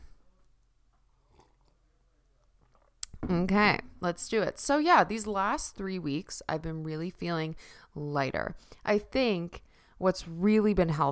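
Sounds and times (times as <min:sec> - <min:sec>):
person sipping a drink: 0:01.2 - 0:01.8
speech: 0:03.3 - 0:11.1.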